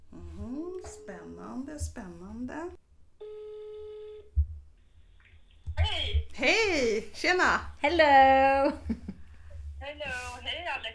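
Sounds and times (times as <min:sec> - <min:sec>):
speech: 0:01.5 - 0:02.8, 0:06.0 - 0:08.9, 0:09.8 - 0:10.9
telephone ringback tone: 0:03.2 - 0:04.3.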